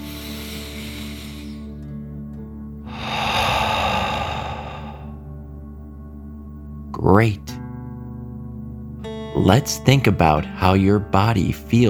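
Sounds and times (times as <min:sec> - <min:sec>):
deep breath in, exhaled through the mouth: 0:00.0 - 0:01.8, 0:02.9 - 0:05.3
speech: 0:07.0 - 0:07.5, 0:09.4 - 0:11.8.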